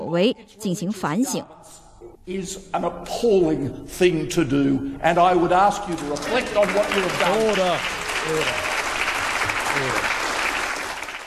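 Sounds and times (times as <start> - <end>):
speech: 0.1 - 8.8, 9.8 - 10.1
large group giving a standing ovation in a senate chamber: 5.6 - 11.2.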